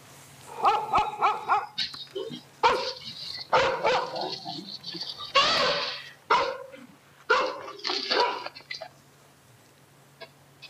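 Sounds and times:
faint steady hum: 0.0s - 10.6s
dog barking at a wild elephant: 0.5s - 4.6s, 5.6s - 8.6s.

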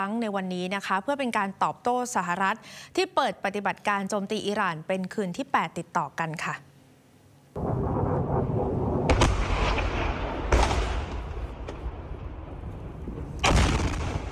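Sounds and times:
speech: 0.0s - 6.7s
Iranian missile exploding on an air base in Jordan: 7.6s - 14.3s
loud booms from missile strike: 7.6s - 14.3s.

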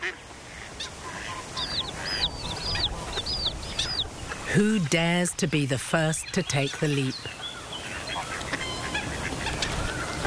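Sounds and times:
mother duck calling her days-old ducklings: 0.0s - 4.5s, 5.5s - 10.2s
speech: 4.6s - 7.4s.

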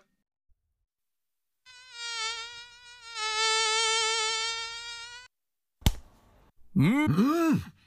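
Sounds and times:
mosquito whine: 1.7s - 5.3s
sharp slap: 5.8s - 6.2s
speech: 6.8s - 7.8s.

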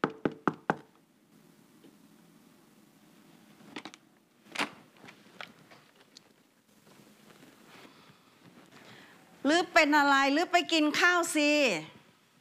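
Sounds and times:
knocking on a door: 0.0s - 0.9s
speech: 9.5s - 11.9s.

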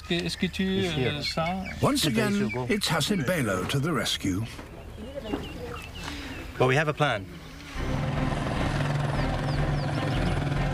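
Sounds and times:
speech: 0.1s - 5.5s, 6.6s - 7.4s
FAO helicopter flying in pursuit of locust swarms: 7.8s - 10.7s.

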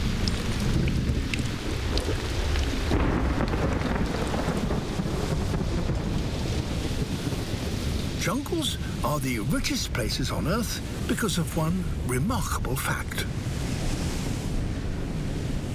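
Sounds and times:
rumbling thunder: 0.0s - 9.0s
gusts of wind: 0.0s - 15.7s
steady pouring rain in heavy thunderstorm: 0.0s - 15.7s
speech: 8.2s - 13.4s.

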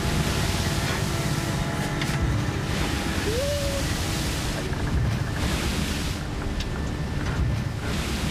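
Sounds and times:
gusting wind in Antarctica: 0.0s - 8.3s
rough ocean surf in Antarctica: 0.0s - 8.3s.

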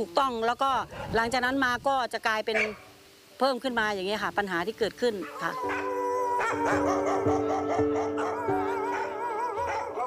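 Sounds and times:
speech: 0.0s - 8.6s
stray dogs at a garbage dump barking and yipping: 2.5s - 2.9s, 5.2s - 10.0s
stray dogs whining with howl-like whines: 5.4s - 10.0s.

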